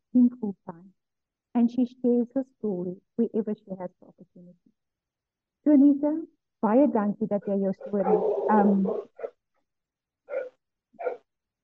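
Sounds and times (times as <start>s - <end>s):
speech: 0.2s - 1.0s, 1.6s - 4.8s, 5.6s - 9.1s
dog barking: 7.4s - 9.3s, 10.3s - 11.2s.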